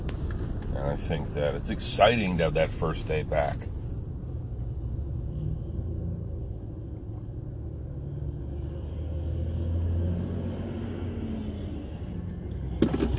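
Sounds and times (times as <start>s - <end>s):
speech: 0.8s - 3.7s
heavy livestock truck driving past: 3.4s - 13.1s.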